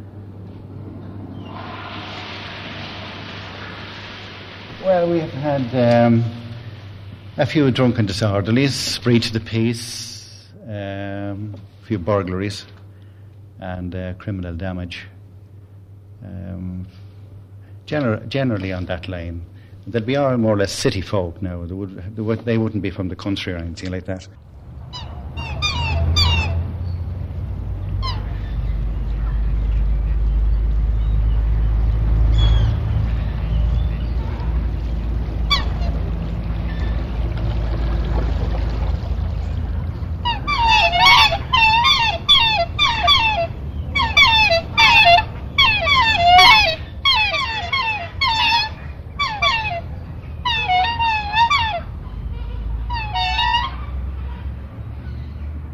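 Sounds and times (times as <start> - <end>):
low outdoor rumble: 0.0 - 55.7
speech: 4.8 - 6.4, 7.4 - 10.1, 10.7 - 12.8, 13.6 - 15.2, 16.2 - 17.0, 17.9 - 24.4
geese honking on a lake: 24.8 - 26.8, 27.8 - 30.3, 31.5 - 37.5, 39.6 - 54.6
ducks calling on a lake: 24.8 - 55.4.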